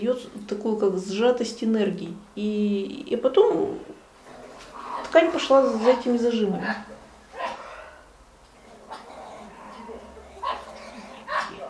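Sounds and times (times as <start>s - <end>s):
speech: 0.0s - 3.9s, 5.1s - 7.0s
low hum: 0.0s - 11.6s
several dogs barking and yapping outside a window: 4.4s - 8.0s, 8.7s - 11.6s.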